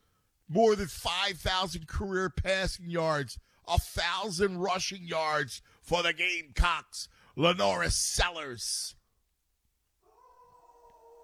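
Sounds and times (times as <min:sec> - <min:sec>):
speech: 0:00.5 - 0:09.0
dog howling: 0:10.0 - 0:11.2.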